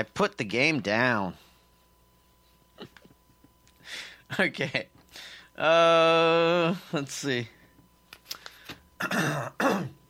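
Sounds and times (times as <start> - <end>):
speech: 0.0 - 1.4, 3.9 - 7.6, 9.0 - 10.0
breaths: 3.8 - 4.3, 5.1 - 5.6, 8.3 - 8.9
person clearing throat: 9.0 - 10.0.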